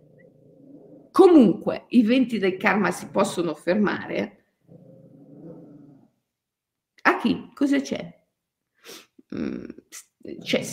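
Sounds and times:
dog growling: 0.0 - 1.6, 2.5 - 4.0, 4.6 - 6.2, 10.2 - 10.7
speech: 1.2 - 4.4, 7.2 - 8.2, 8.8 - 10.7.

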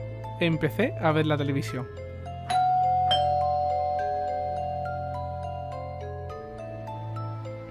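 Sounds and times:
speech: 0.4 - 2.0
doorbell chime ringing a melodic sequence on Halloween night: 2.4 - 7.7.

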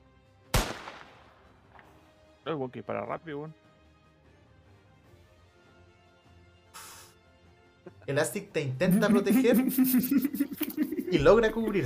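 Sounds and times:
single sharp gunshot with tail: 0.5 - 2.0
speech: 2.5 - 3.6, 8.1 - 11.8
laughter: 8.7 - 11.8.

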